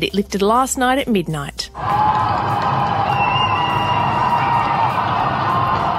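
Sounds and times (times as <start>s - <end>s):
speech: 0.0s - 3.0s
large crowd in Melbourne Victoria cheering at end of lockdown: 1.8s - 5.9s
faint whistle: 3.0s - 4.7s.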